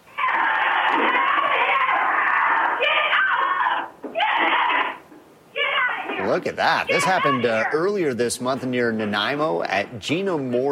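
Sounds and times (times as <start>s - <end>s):
Nigerian dwarf goat screaming during cougar attack on a farm: 0.1s - 7.8s
speech: 6.4s - 10.6s.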